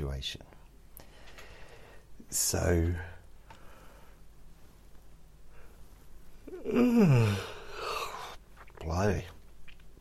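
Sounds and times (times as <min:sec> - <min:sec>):
speech: 0:00.1 - 0:00.5, 0:02.3 - 0:03.1, 0:06.6 - 0:07.5, 0:08.9 - 0:09.4
person yawning: 0:06.4 - 0:08.4.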